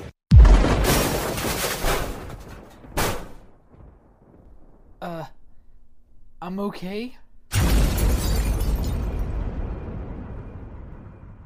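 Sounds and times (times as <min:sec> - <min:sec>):
missile explosion: 0:00.3 - 0:04.9, 0:07.5 - 0:11.4
speech: 0:06.5 - 0:07.7.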